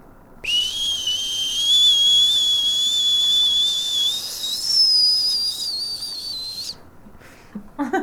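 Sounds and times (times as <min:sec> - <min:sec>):
person imitating a whistling boiling kettle: 0:00.4 - 0:06.8.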